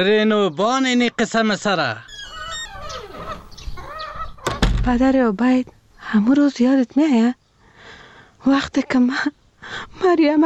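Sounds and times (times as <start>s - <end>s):
speech: 0.0s - 2.1s, 4.8s - 7.4s, 8.4s - 10.4s
chickens clucking and squawking at grain-feeding time: 0.8s - 5.0s.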